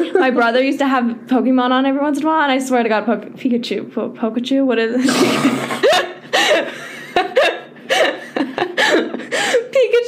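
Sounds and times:
speech: 0.1s - 7.6s
person laughing: 5.0s - 9.7s.

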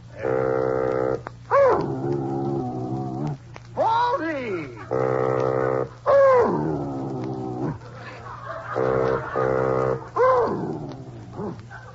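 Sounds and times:
steady low hum: 0.0s - 11.9s
reedy bassoon notes played by a person: 0.1s - 1.3s, 4.9s - 6.0s, 8.8s - 10.2s
dog howling along to bassoon music: 0.2s - 3.4s, 4.8s - 7.8s, 8.7s - 11.9s
laughter: 7.8s - 10.2s.

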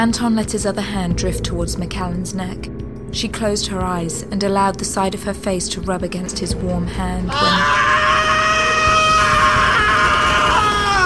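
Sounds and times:
speech: 0.0s - 8.1s
man screaming: 7.3s - 11.0s.

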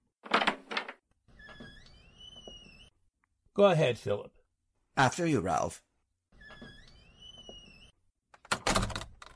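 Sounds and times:
door squeaking as it swings open: 1.3s - 3.0s, 6.3s - 8.0s
speech: 3.6s - 4.4s, 5.0s - 5.9s.

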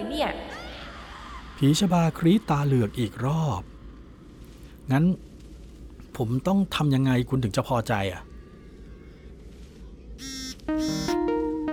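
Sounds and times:
speech: 0.2s - 0.6s, 1.6s - 3.7s, 4.9s - 5.3s, 6.2s - 8.3s, 10.2s - 10.9s
phone electronic ringtone for an incoming video call: 10.2s - 11.7s.

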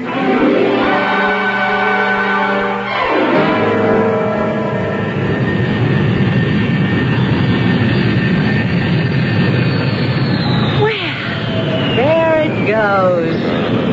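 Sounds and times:
airplane engine roaring as it departs: 0.0s - 13.9s.

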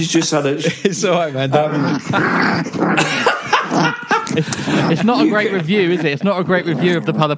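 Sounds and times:
laughter: 0.0s - 7.1s
speech: 0.0s - 7.3s
toy Maltese dog growling while chasing tail: 1.5s - 7.3s.

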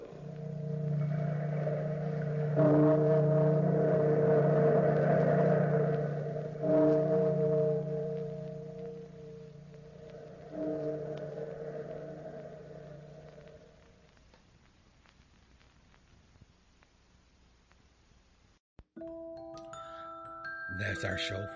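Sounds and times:
deep heavy bell tolling: 0.0s - 13.8s
speech: 21.0s - 21.5s.

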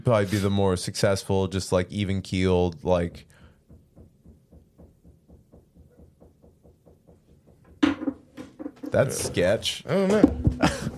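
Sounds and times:
speech: 0.0s - 3.4s, 9.0s - 10.9s
soft rhythmic knocking: 2.7s - 10.9s.

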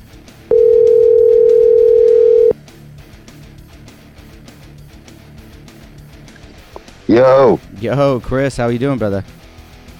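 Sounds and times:
telephone dial tone while a call is being placed: 0.5s - 2.6s
speech: 7.1s - 9.4s.

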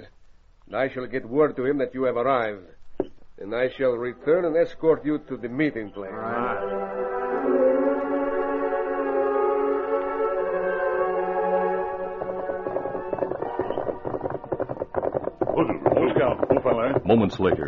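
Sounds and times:
speech: 0.7s - 2.8s, 3.4s - 7.0s, 16.8s - 17.6s
sustained brassy music: 5.0s - 16.6s
horses' hooves clip-clopping while riding: 10.9s - 17.6s.

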